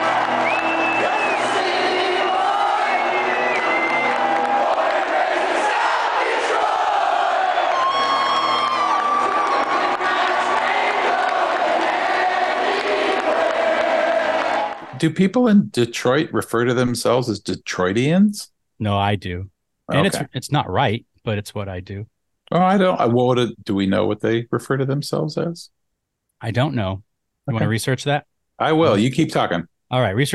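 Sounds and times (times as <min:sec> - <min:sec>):
huge arena hockey playoff crowd singing along: 0:00.0 - 0:07.9, 0:09.2 - 0:15.0
people shouting: 0:00.0 - 0:14.8
speech: 0:15.0 - 0:25.8, 0:26.4 - 0:30.3.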